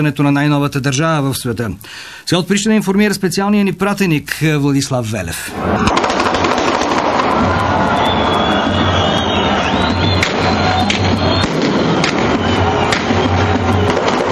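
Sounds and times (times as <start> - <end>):
speech: 0.0 - 6.6
dense roaring street crowd cheering and shouting: 5.5 - 14.2
loud sharp bangs of celebratory gunfire: 5.8 - 8.0, 10.1 - 14.2.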